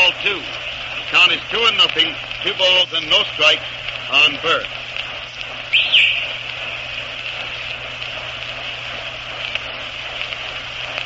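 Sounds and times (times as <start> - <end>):
speech: 1.2 - 4.8
shrill whistle of a baseball coach: 5.7 - 6.3.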